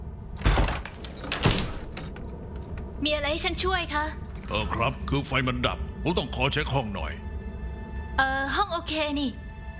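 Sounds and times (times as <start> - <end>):
door of a room in a building being opened: 0.3 - 3.0
speech: 3.0 - 7.2, 8.2 - 9.4.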